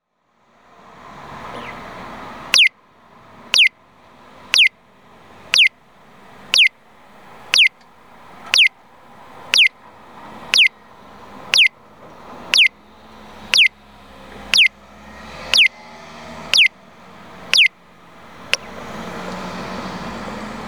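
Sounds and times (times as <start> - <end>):
audible traffic signal peeping at a crossing in Inazawa, Aichi: 1.5 - 1.9, 2.5 - 2.8, 3.5 - 3.8, 4.5 - 4.8, 5.5 - 5.8, 6.4 - 6.8, 7.5 - 16.8, 17.5 - 17.8.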